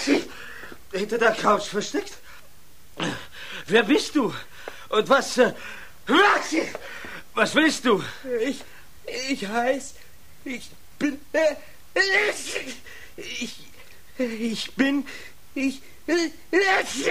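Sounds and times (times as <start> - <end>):
person acting out sneezes: 0.0 - 0.8, 3.0 - 3.3, 12.0 - 13.8, 16.6 - 17.1
speech: 0.9 - 2.3, 3.0 - 17.1.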